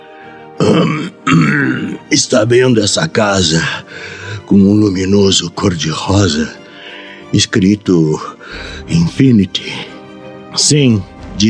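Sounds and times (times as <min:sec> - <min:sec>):
speech: 0:00.2 - 0:06.6, 0:07.3 - 0:09.9, 0:10.6 - 0:11.4
rough cough: 0:00.6 - 0:02.0
gravelly throat clearing: 0:00.6 - 0:02.1.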